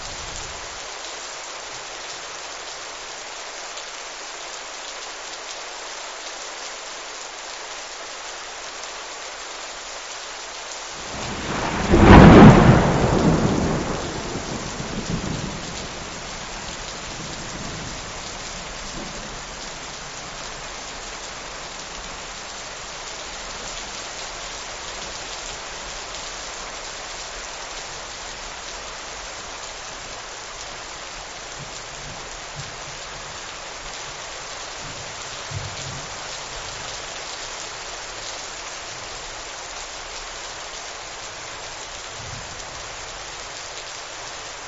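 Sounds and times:
heavy rain: 0.0s - 44.6s
thunderclap: 11.0s - 16.0s.

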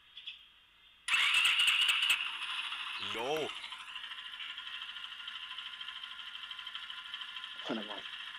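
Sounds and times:
small 125cc motorcycle engine starting and idling: 1.1s - 8.3s
speech: 3.0s - 3.7s, 7.7s - 8.2s.

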